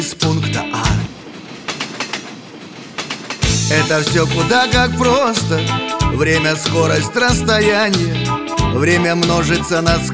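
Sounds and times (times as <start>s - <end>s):
speech: 0.0s - 0.6s, 3.7s - 10.1s
train wheels clacking over rail joints: 0.0s - 3.9s.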